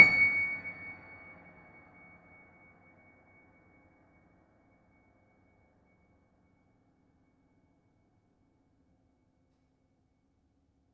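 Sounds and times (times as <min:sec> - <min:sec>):
piano note with pedal: 0:00.0 - 0:00.8.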